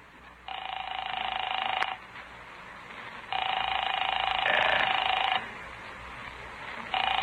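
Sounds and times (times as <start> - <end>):
electronic telephone ring heard through a line: 0.4 - 2.1, 3.3 - 5.5, 6.9 - 7.2.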